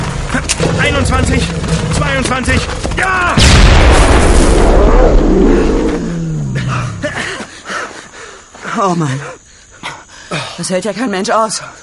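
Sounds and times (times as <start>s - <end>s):
speech: 0.9s - 6.1s, 8.8s - 9.4s, 10.6s - 11.8s
hand grenade explosion: 3.3s - 6.4s.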